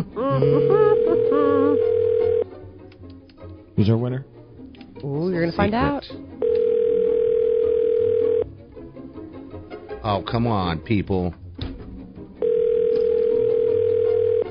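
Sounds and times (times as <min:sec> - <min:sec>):
telephone line ringback tones of an unanswered phone call: 0:00.4 - 0:02.5, 0:06.4 - 0:08.5, 0:12.4 - 0:14.5
speech: 0:03.8 - 0:04.4, 0:05.0 - 0:06.5, 0:10.1 - 0:11.4.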